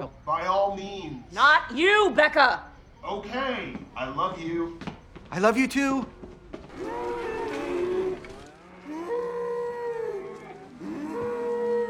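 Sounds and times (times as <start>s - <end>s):
speech: 0.0s - 6.2s
cow mooing loudly: 6.7s - 11.8s.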